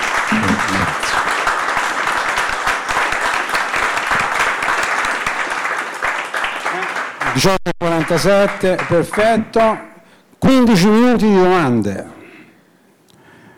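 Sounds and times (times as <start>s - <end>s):
audience applause at a book presentation: 0.0s - 9.6s
speech: 7.4s - 12.2s.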